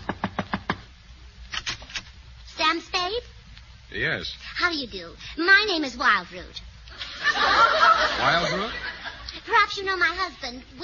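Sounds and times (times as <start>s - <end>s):
knocking on a door: 0.0s - 0.8s
speech: 3.9s - 6.7s, 7.3s - 8.8s, 9.6s - 10.8s
laughter: 6.9s - 9.3s.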